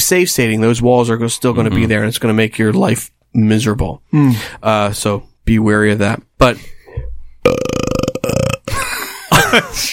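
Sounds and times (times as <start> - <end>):
speech: 0.1 - 6.7, 7.4 - 7.6, 9.5 - 9.9
loud long croaky belch: 7.4 - 8.7.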